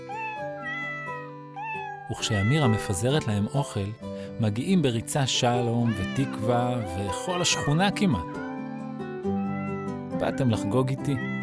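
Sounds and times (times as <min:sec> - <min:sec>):
two cats meowing on a fence: 0:00.0 - 0:03.2, 0:05.7 - 0:11.4
speech: 0:02.1 - 0:08.4, 0:10.3 - 0:11.4.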